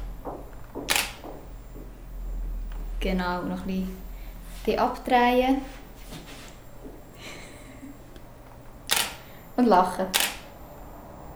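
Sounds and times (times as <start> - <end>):
low steady hum: 0.0 - 11.3
camera shutter click during a portrait photo shoot: 0.9 - 1.2, 8.9 - 9.3, 10.1 - 10.5
speech: 3.0 - 4.1, 4.7 - 5.8, 9.6 - 10.2.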